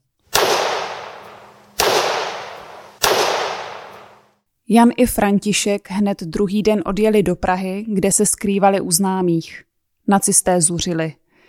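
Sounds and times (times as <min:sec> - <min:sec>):
loud gunshots with long decay: 0:00.3 - 0:04.3
speech: 0:04.7 - 0:11.2.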